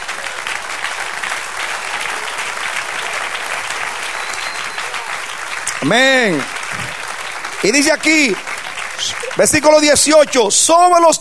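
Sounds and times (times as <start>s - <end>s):
audience applauding in a room: 0.0s - 11.1s
speech: 5.8s - 6.8s, 7.6s - 11.1s.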